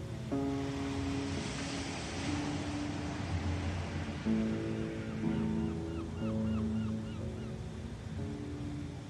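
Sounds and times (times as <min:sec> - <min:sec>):
ocean surf washing onto a beach: 0:00.0 - 0:09.0
faint bird cries: 0:05.1 - 0:07.6.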